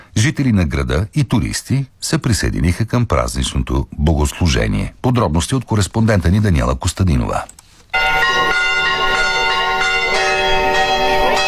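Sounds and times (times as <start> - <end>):
speech: 0.2 - 7.6
church bells ringing for the feast day of Saint John the Baptist in Sozopol: 8.0 - 11.4.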